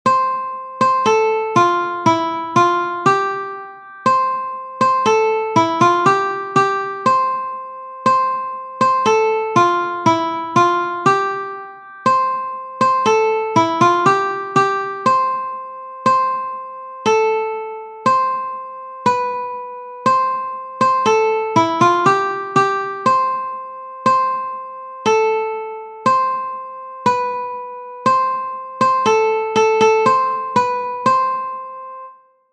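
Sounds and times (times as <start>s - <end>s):
ukulele folk dance melody: 0.1s - 32.1s.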